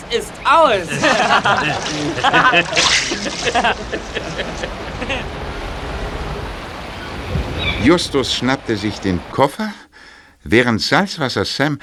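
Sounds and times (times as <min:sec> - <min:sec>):
water splashing as a man wades out: 0:00.0 - 0:10.3
speech: 0:00.1 - 0:05.5, 0:07.7 - 0:09.8, 0:10.4 - 0:11.8
person chuckling: 0:00.9 - 0:05.4.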